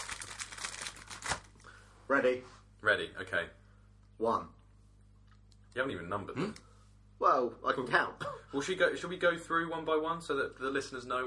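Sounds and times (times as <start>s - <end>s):
biscuit packaging crinkling as biscuits are taken out: 0.0s - 1.6s
speech: 2.1s - 3.6s, 4.2s - 4.6s, 5.8s - 11.2s.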